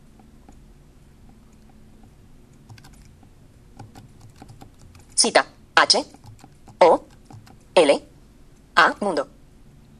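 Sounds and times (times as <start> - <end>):
typing on a computer keyboard while entering code with a screen reader: 1.3 - 7.8
speech: 5.2 - 6.2, 7.8 - 8.1, 9.0 - 9.4.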